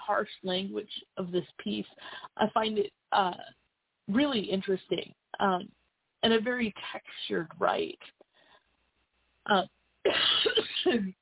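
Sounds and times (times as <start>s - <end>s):
speech: 0.1s - 8.2s, 9.5s - 11.2s
person coughing harshly: 10.1s - 10.9s.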